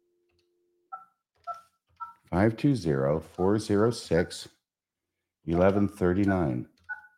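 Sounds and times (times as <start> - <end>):
dual-tone phone keypad beeps: 0.9 - 2.2, 6.2 - 7.1
voice talking: 2.3 - 4.5, 5.5 - 6.7.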